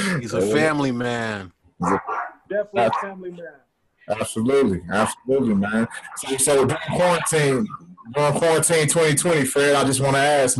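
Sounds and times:
speech: 0:00.2 - 0:10.5
dog barking: 0:01.8 - 0:03.2.

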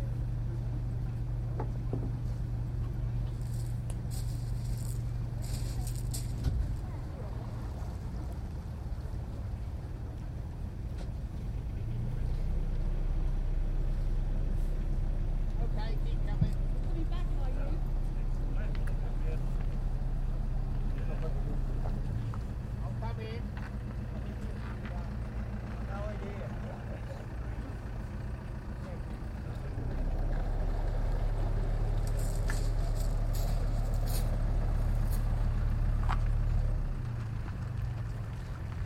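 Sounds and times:
ferry engine drone at a river crossing: 0:00.0 - 0:38.8
ferry passengers chattering by a river crossing: 0:03.6 - 0:09.4, 0:15.6 - 0:35.4.

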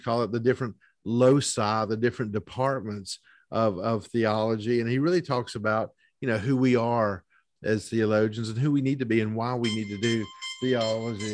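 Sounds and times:
speech: 0:00.0 - 0:11.3
alarm with steady high electronic tones: 0:09.6 - 0:11.3.

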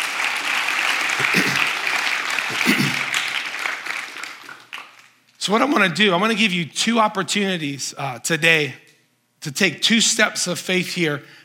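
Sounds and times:
crowd applauding: 0:00.0 - 0:05.2
speech: 0:05.5 - 0:08.8, 0:09.4 - 0:11.4.

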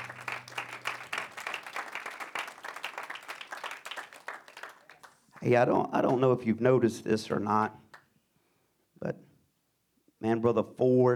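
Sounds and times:
faint low hum: 0:00.0 - 0:02.1
audience applause: 0:00.0 - 0:05.2
speech: 0:05.4 - 0:07.8, 0:10.3 - 0:11.1.

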